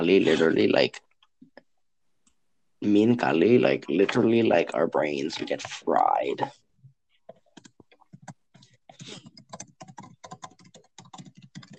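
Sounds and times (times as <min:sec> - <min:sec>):
speech: 0:00.0 - 0:01.1, 0:02.8 - 0:06.6
rapid forceful typing on a laptop keyboard: 0:07.3 - 0:11.7.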